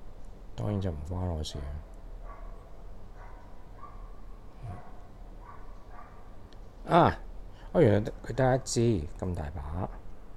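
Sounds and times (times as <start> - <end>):
speech: 0.6 - 1.9, 6.9 - 9.9
excited dogs barking outside: 1.5 - 6.4.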